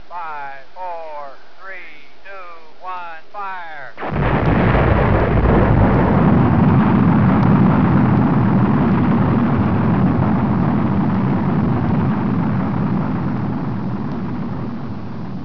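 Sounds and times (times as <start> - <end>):
rocket firing: 4.0 - 15.4.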